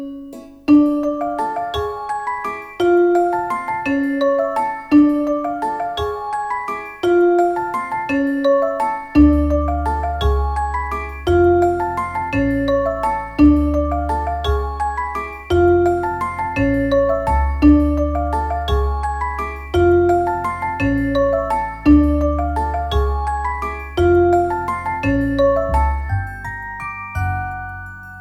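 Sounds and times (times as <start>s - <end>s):
mischievous orchestral comic drama underscore: 0.7s - 28.0s.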